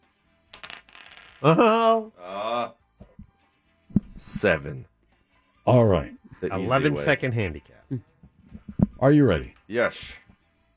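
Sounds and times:
dice tumbling across a hard surface in a quiz game: 0.5s - 1.5s
speech: 1.4s - 2.4s, 4.2s - 4.9s, 5.6s - 8.1s, 9.0s - 10.2s.

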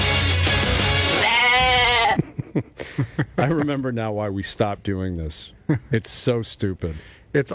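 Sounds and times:
goat bleating: 1.0s - 2.2s
speech: 2.6s - 7.5s.

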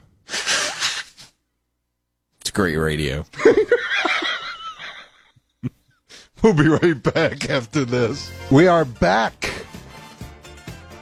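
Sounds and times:
loud single sneeze: 0.3s - 1.4s
speech: 2.6s - 3.8s, 6.4s - 9.5s.

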